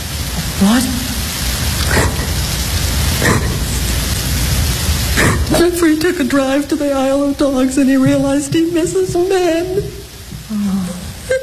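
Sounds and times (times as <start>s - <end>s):
steady rain falling: 0.0s - 11.4s
speech: 0.6s - 1.1s, 5.5s - 10.0s.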